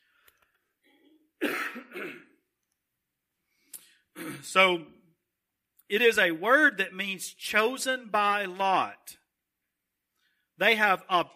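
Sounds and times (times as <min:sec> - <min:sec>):
person coughing: 0:00.8 - 0:02.4, 0:04.2 - 0:04.6
person clearing throat: 0:00.9 - 0:02.4, 0:04.2 - 0:04.6
speech: 0:04.4 - 0:05.0, 0:05.9 - 0:09.2, 0:10.6 - 0:11.3.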